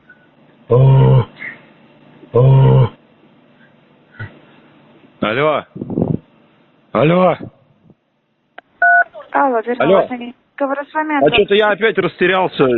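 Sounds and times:
speech: 0.7s - 1.1s, 5.3s - 5.7s, 7.0s - 7.4s, 9.6s - 12.7s
telephone call transfer two-tone beeps: 8.8s - 9.1s.

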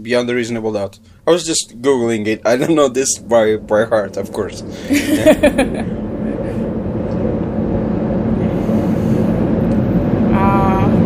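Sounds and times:
speech: 0.0s - 6.1s
blue line commuter train rumbling past: 1.2s - 11.0s
laughter: 4.8s - 6.5s.

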